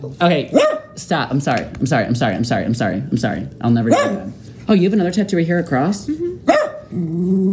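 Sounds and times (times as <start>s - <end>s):
speech: 0.0s - 7.5s
dog barking: 0.5s - 1.0s, 3.9s - 4.4s, 6.5s - 6.9s
dog growling low: 6.9s - 7.5s.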